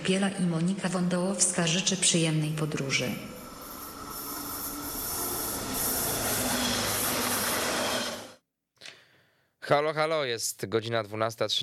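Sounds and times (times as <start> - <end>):
speech: 0.0 - 3.4, 9.7 - 11.6
train departing from the track, rolling wheels rumbling: 2.6 - 8.4
thin high squeal of a departing train: 2.7 - 8.4
train hiss: 3.3 - 8.2.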